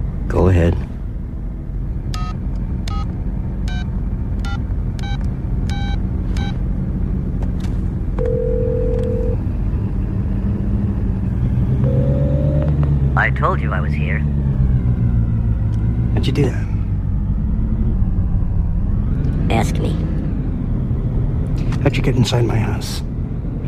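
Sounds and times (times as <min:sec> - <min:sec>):
steady low rumble: 0:00.0 - 0:23.6
speech: 0:00.5 - 0:00.9, 0:16.2 - 0:16.7, 0:22.0 - 0:23.1
touch-tone telephone dialing beeps: 0:08.2 - 0:09.4.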